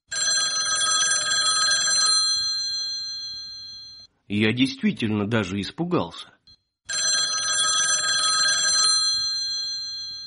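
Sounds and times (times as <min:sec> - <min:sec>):
mechanical bell of a wall-hung telephone ringing: 0:00.1 - 0:04.1, 0:06.5 - 0:10.2
speech: 0:04.3 - 0:06.4.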